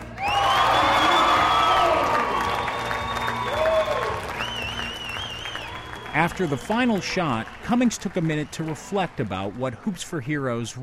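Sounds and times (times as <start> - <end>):
crowd of about 150 people cheering: 0.0 - 10.8
whoops and high shouted voices: 0.2 - 6.7
speech: 6.2 - 10.8.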